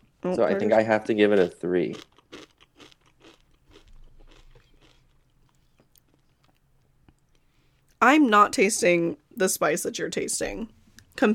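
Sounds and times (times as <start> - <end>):
speech: 0.2 - 2.2, 8.0 - 11.3
chewing and crunching a chip with salsa: 1.3 - 8.0.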